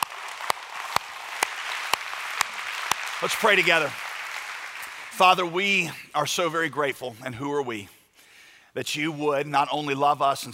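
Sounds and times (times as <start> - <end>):
church congregation clapping in steady rhythm: 0.0 - 6.7
speech: 3.2 - 4.0, 5.2 - 8.0, 8.7 - 10.5.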